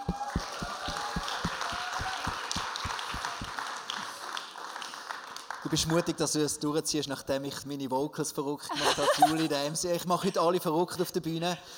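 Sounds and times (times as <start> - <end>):
rhythmic pulse of low thumps: 0.0 - 3.6
crowd applauding loudly for a pastor: 0.0 - 6.3
speech: 5.7 - 11.7
laughter: 8.7 - 9.8.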